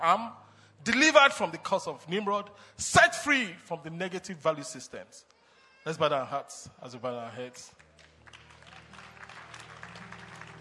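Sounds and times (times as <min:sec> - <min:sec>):
speech: 0:00.0 - 0:07.8
crowd applauding: 0:07.8 - 0:10.5.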